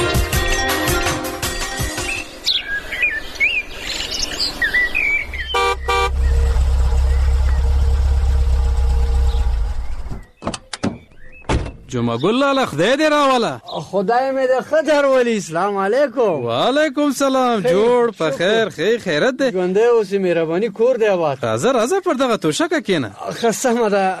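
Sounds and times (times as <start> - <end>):
birds chirping: 0.1 - 24.1
car engine idling with a low steady rumble: 5.3 - 10.2
speech: 12.1 - 24.1.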